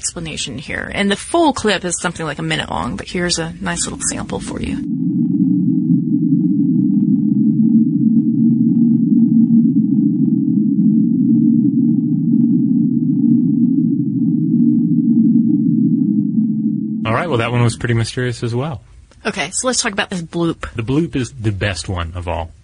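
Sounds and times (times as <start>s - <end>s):
speech: 0.0s - 5.0s, 17.2s - 22.6s
faint higher overtone humming: 0.0s - 22.6s
low underwater whistle picked up by a hydrophone west of Costa Rica: 4.8s - 17.0s.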